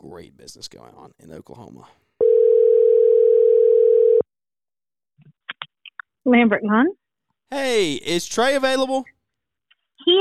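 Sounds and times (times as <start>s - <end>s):
speech: 0.0s - 2.0s, 6.2s - 9.2s, 10.0s - 10.2s
telephone ringback tone on an outgoing call to a lawn care business: 2.2s - 4.3s.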